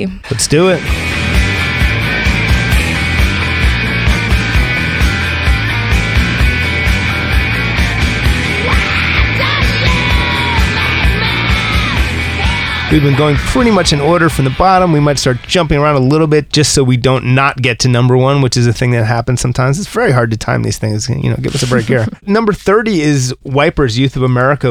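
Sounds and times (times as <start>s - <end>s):
speech: 0.0s - 1.0s, 12.9s - 24.6s
loud dense grunge rock: 0.0s - 16.1s
distorted guitars: 0.0s - 17.5s
pounding drums: 0.4s - 15.0s
female voice shrieking and wailing in a high piercing register: 8.5s - 12.9s
laughter: 21.4s - 22.2s.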